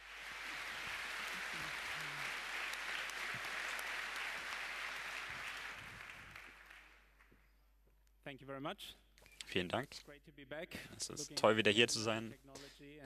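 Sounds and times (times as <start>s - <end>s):
applause from a large audience: 0.0s - 7.1s
speech: 8.3s - 13.0s.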